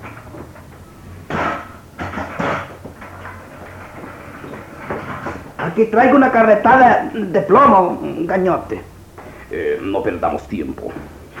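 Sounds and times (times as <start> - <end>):
door rattle: 0.0 - 6.6
steady low hum: 0.0 - 11.3
speech: 5.8 - 8.9, 9.5 - 11.1.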